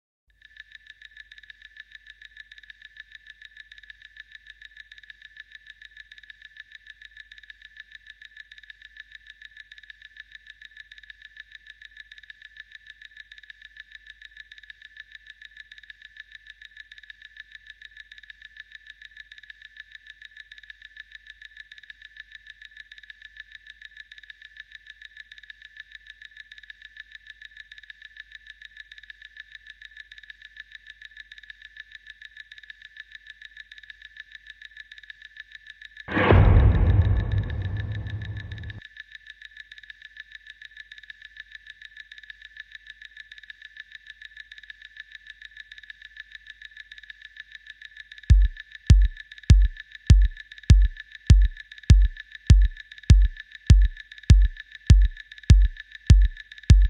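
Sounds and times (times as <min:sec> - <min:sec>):
FX drums: 0:36.1 - 0:38.8, 0:48.3 - 0:56.8.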